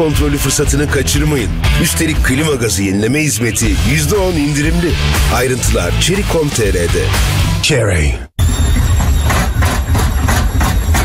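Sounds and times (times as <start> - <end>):
speech: 0.0 - 8.3
washing machine rumbling and clattering: 8.4 - 11.0.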